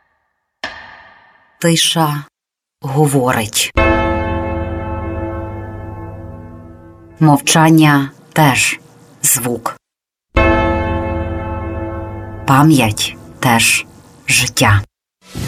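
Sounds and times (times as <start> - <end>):
speech: 1.6 - 3.9, 7.2 - 9.8, 12.5 - 14.9
church bell tolling: 3.8 - 7.9, 10.4 - 14.1.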